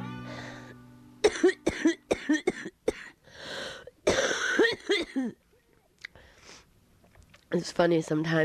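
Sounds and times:
strained wheezy intake of breath: 0.3 - 0.8, 3.2 - 3.9, 6.1 - 6.7
hard harsh coughing: 1.2 - 5.4
speech: 7.6 - 8.4.

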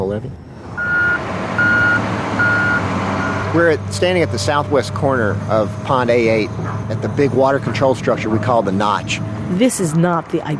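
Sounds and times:
speech: 0.0 - 0.8, 3.5 - 10.5
construction site vehicle low engine rumble: 0.0 - 10.5
construction site vehicle reversing beeps: 0.5 - 8.4.

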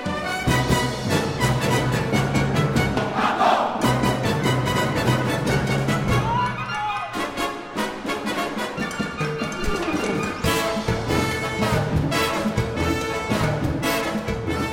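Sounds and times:
youth orchestra playing a driving mambo encore with percussion and brass: 0.0 - 14.7
group shouts: 3.1 - 3.8, 6.2 - 7.2.

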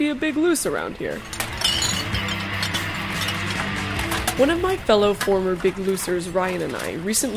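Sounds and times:
speech: 0.0 - 1.4, 4.4 - 7.3
glass clinking and breaking: 1.2 - 4.2.

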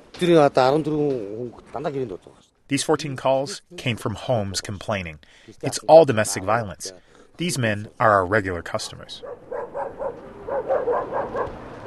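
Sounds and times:
speech: 0.2 - 9.4
dogs barking after dark in a district of traditional circular tents in Ulaanbaatar: 9.2 - 11.8.

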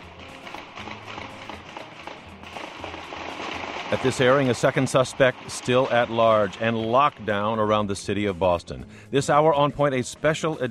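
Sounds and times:
gunfire at night during a shootout: 0.0 - 7.1
speech: 3.9 - 10.7.

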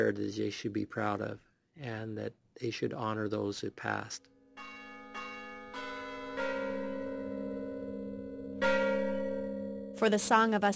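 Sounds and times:
speech: 0.0 - 4.3, 10.0 - 10.7
mission church bells ringing: 4.6 - 10.5.

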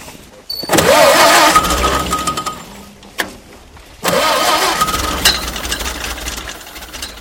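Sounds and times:
Ford Model A engine of an old ice-cutting machine starting on a frozen pond: 0.0 - 7.1.

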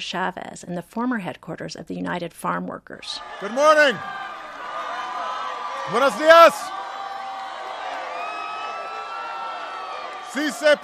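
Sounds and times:
speech: 0.0 - 4.2, 5.9 - 6.8, 10.3 - 10.8
large crowd cheering and whooping at La Paz in Keene: 3.2 - 10.8.

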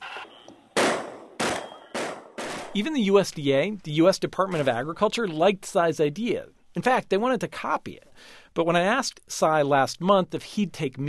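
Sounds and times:
gunshots fired at wild pigs during a drone-guided night hunt over fields: 0.1 - 2.8
speech: 2.8 - 11.0.

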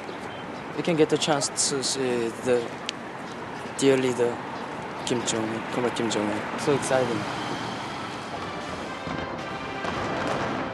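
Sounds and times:
speech: 0.8 - 3.2, 3.8 - 7.6
fireworks exploding during a display in April: 8.3 - 10.7.

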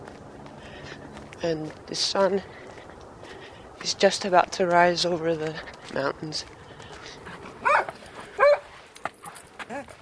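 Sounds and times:
speech: 1.4 - 2.6, 3.8 - 6.6
dog barking excitedly: 7.6 - 8.7.

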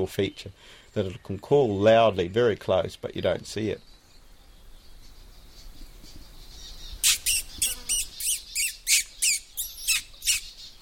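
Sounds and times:
speech: 0.0 - 3.9
person making squeaky pishing noises to attract small birds: 7.0 - 10.5.

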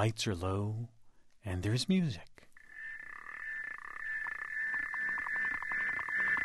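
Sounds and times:
speech: 0.0 - 2.5
South African clawed frog clicking mating call in a pond: 2.5 - 6.4.

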